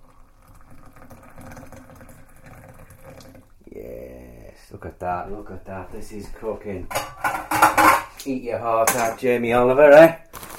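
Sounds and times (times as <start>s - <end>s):
water pouring into a cup: 0.0s - 3.6s
speech: 4.7s - 10.2s.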